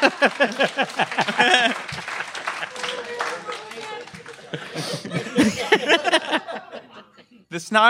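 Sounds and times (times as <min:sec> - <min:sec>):
speech: 0:00.0 - 0:01.5
crowd applauding: 0:00.0 - 0:06.7
laughter: 0:00.0 - 0:07.5.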